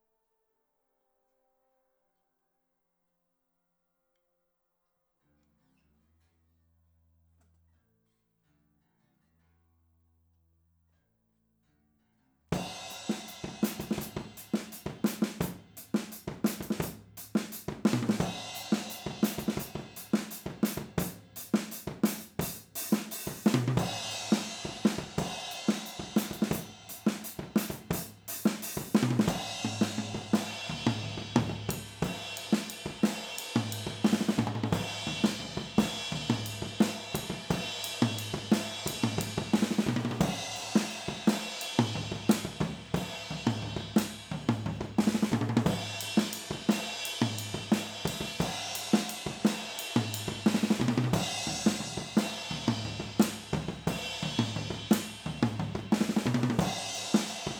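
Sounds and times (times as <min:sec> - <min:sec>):
drums recorded overhead in stereo: 0:12.5 - 0:57.5.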